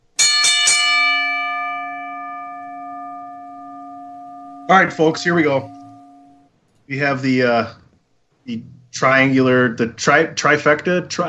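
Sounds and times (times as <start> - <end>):
bell struck and ringing: 0.2 - 6.5
speech: 4.7 - 5.8, 6.9 - 7.8, 8.5 - 11.2.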